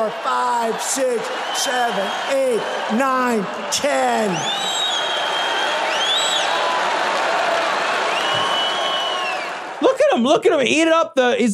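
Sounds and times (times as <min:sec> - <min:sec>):
speech: 0:00.0 - 0:05.3, 0:09.8 - 0:11.5
studio audience cheering, clapping and shouting: 0:00.0 - 0:10.2
sharp whistles from the audience: 0:04.3 - 0:06.7, 0:07.8 - 0:09.6.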